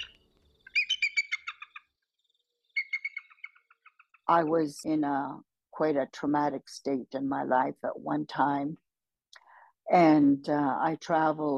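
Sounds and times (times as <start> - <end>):
eagle call with rapid high-pitched chattering notes: 0.0 - 1.9, 2.7 - 4.3
speech: 4.3 - 8.8, 9.9 - 11.5.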